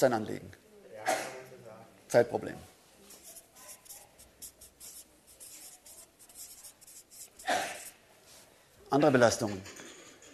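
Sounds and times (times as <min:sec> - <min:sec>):
speech: 0:00.0 - 0:00.6, 0:02.1 - 0:02.7, 0:08.9 - 0:09.8
writing by hand: 0:03.1 - 0:08.0.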